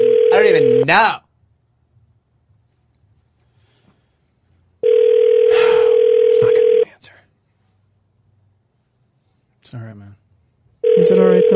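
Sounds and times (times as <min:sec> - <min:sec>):
phone ringback tone: 0:00.0 - 0:00.9, 0:04.8 - 0:06.9, 0:10.8 - 0:11.5
speech: 0:00.4 - 0:01.2, 0:09.7 - 0:10.2, 0:11.0 - 0:11.5.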